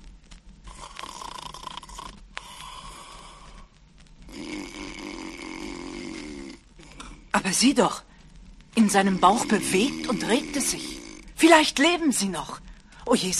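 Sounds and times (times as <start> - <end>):
sleeping wolf snoring loudly: 0.7 - 3.5, 4.3 - 7.1, 9.0 - 11.4
speech: 7.4 - 8.1, 8.8 - 13.3.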